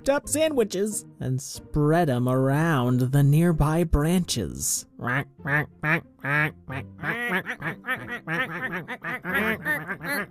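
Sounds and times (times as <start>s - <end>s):
speech: 0.0s - 10.2s
flock of ducks quacking: 5.0s - 10.2s.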